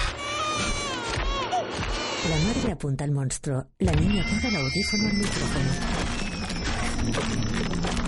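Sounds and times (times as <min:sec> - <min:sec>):
young boy crying behind a storage tank: 0:00.2 - 0:02.2
speech: 0:02.3 - 0:06.2, 0:07.0 - 0:08.0.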